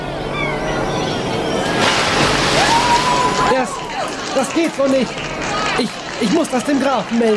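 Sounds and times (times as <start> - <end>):
steady watery background of a river: 0.1 - 7.3
crate thrown into a river splashing: 1.7 - 3.5
speech: 4.4 - 7.3.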